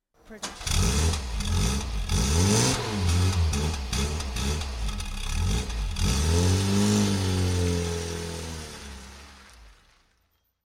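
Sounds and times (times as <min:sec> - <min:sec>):
car starting and driving off in the distance: 0:00.3 - 0:10.2.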